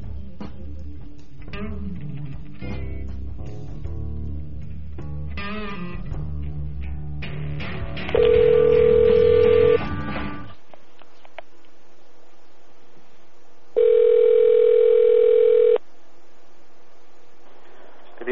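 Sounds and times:
telephone dial tone: 8.2s - 9.8s, 13.8s - 15.8s.

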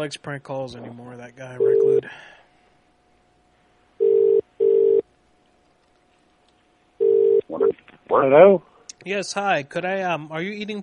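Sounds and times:
speech: 0.0s - 2.4s, 8.1s - 10.8s
telephone line tone before a call: 4.0s - 5.0s, 7.0s - 7.5s.

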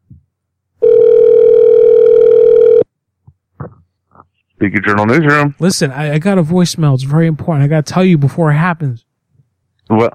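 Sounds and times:
steady telephone tone while a call is transferred: 0.8s - 2.9s
speech: 4.6s - 9.1s, 9.9s - 10.1s.

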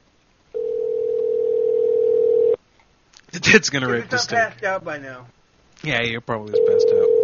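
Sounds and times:
telephone ringing tone electronic beep: 0.6s - 2.6s, 6.6s - 7.2s
speech: 3.4s - 7.2s.

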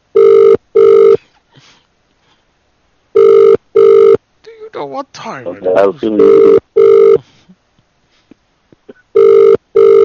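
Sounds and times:
telephone ringing in a double-burst pattern: 0.2s - 1.2s, 3.2s - 4.2s, 6.2s - 7.2s, 9.2s - 10.0s
speech: 4.9s - 6.6s.

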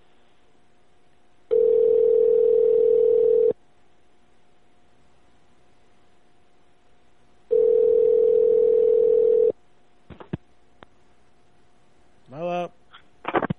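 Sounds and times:
long steady phone line ringback tones: 1.5s - 3.6s, 7.5s - 9.5s.

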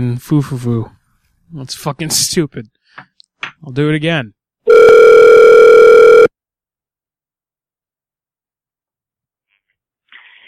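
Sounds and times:
speech: 0.0s - 5.3s
telephone dial tone after a hang-up: 4.7s - 6.3s.

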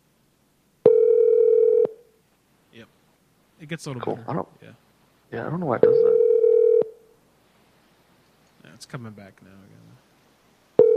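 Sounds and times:
telephone dial tone after a call is hung up: 0.9s - 1.9s, 6.0s - 6.9s
speech: 3.6s - 6.1s, 8.8s - 10.1s.

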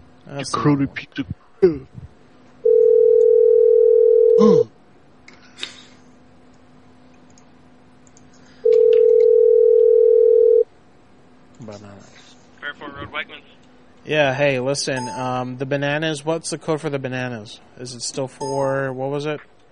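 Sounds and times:
speech: 0.3s - 2.1s, 4.4s - 4.8s, 14.1s - 19.5s
telephone ringback tone while calling someone back: 2.6s - 4.4s, 8.7s - 10.6s.

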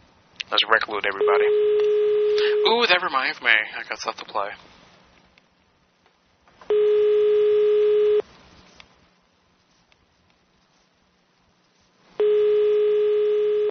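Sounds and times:
speech: 0.5s - 4.7s
telephone line beeping: 1.2s - 2.8s, 6.7s - 8.2s, 12.2s - 13.6s.

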